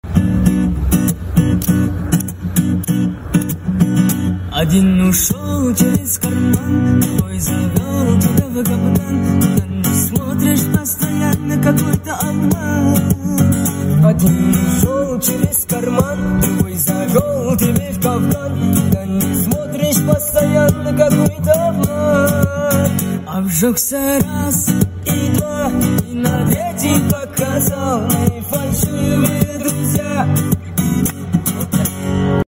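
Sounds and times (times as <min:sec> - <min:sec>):
guitar cover: 0:00.0 - 0:32.4.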